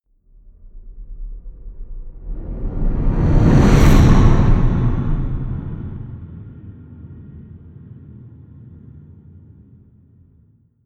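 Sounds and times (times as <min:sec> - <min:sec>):
racing whoosh: 0:00.7 - 0:06.2.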